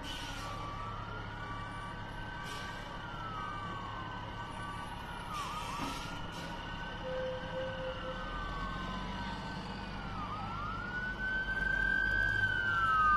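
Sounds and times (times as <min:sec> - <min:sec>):
low rumble of traffic: 0:00.0 - 0:13.1
police car sirens passing at night in Cranston: 0:00.0 - 0:13.1.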